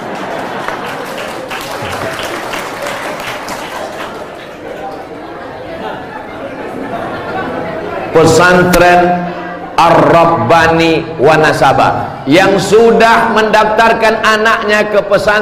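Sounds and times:
audience at an Islamic boarding school gathering applauding: 0.0s - 5.6s
laughter: 0.0s - 8.7s
crowd chatter: 0.0s - 12.6s
speech: 8.2s - 9.2s, 9.8s - 15.4s.

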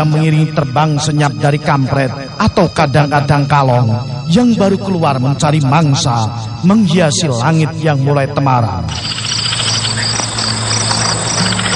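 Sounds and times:
speech: 0.0s - 9.5s
crickets chirping at dusk: 8.9s - 11.7s.

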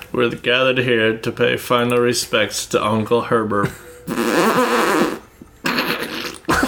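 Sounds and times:
speech: 0.2s - 3.9s
loud buzzy fart: 4.1s - 6.5s.

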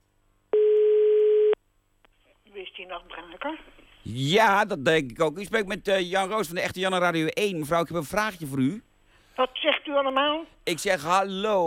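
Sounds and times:
telephone ringback tone while calling an elderly resident: 0.6s - 1.6s
speech: 2.8s - 11.6s.

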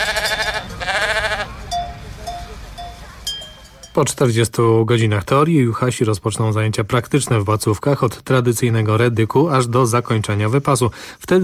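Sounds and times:
flock of sheep bleating in highland mountain pastures: 0.0s - 1.6s
speech: 4.0s - 11.4s.

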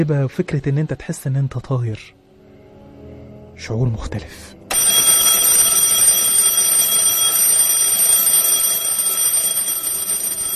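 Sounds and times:
speech: 0.0s - 2.2s, 3.6s - 4.6s
alarm clock bell ringing: 4.7s - 10.5s.

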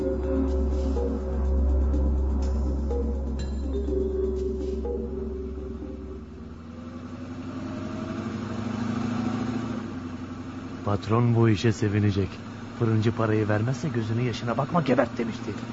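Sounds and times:
brief tonal sounds: 0.0s - 6.7s
minibus engine idling on arrival: 0.0s - 15.7s
speech: 10.9s - 15.7s.

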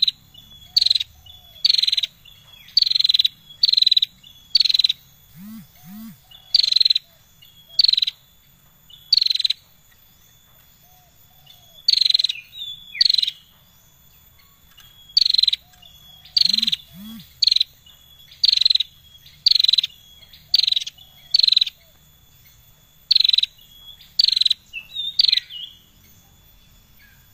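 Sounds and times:
bar-winged prinia giving short buzzy chattering phrases: 0.0s - 27.3s
faint continuous high whine: 5.2s - 6.5s, 16.3s - 18.2s
low arched hoots: 5.3s - 7.2s, 15.6s - 17.6s.

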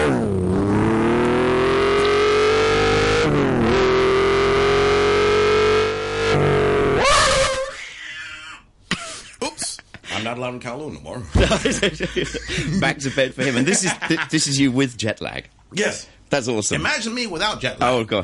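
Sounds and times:
Porsche sports car engine revving: 0.0s - 7.0s
speech: 10.5s - 18.2s
laughter: 11.3s - 14.6s.

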